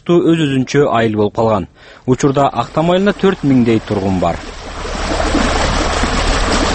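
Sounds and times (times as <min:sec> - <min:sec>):
speech: 0:00.1 - 0:04.6
water flowing in an irrigation canal: 0:02.2 - 0:06.7.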